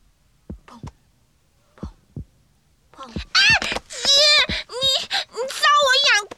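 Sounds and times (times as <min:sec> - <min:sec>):
soft double thumps of a heartbeat: 0:00.4 - 0:01.0, 0:01.8 - 0:02.4, 0:03.1 - 0:05.2
child's high-pitched wailing sing-song voice: 0:03.0 - 0:06.1.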